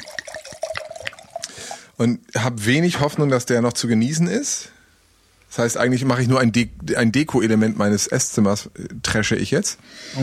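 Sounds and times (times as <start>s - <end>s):
wine pouring into a glass: 0.0s - 1.9s
speech: 2.0s - 4.8s, 5.5s - 10.2s.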